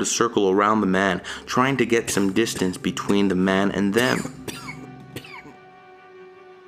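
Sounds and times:
speech: 0.0 - 4.6
steady low hum: 0.0 - 6.6
man coughing in a train car: 4.0 - 5.6.

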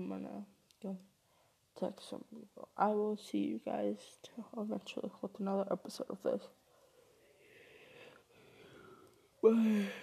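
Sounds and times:
speech: 0.0 - 1.1, 1.8 - 6.6, 9.4 - 10.0
long breathy voiced yawn: 9.4 - 10.0.

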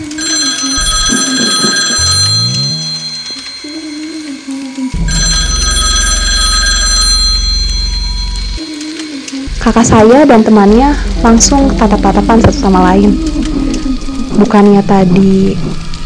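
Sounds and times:
old landline telephone bell ringing: 0.0 - 8.7
speech: 9.7 - 13.6, 14.4 - 15.8.

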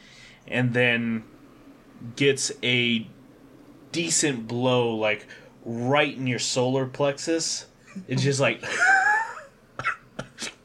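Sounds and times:
speech: 0.5 - 1.4, 2.0 - 3.2, 3.9 - 9.0
laughter: 7.9 - 9.5
short breathy coughs: 9.8 - 10.6.

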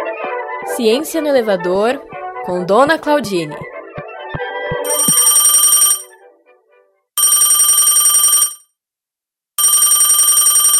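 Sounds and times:
speech: 0.1 - 3.6
telephone ringing in buzzing bursts: 4.8 - 6.2, 7.2 - 8.8, 9.6 - 10.7.

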